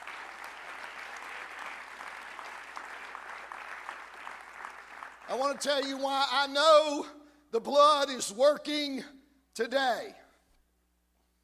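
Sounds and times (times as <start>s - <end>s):
crowd clapping: 0.0s - 6.0s
speech: 5.3s - 10.2s.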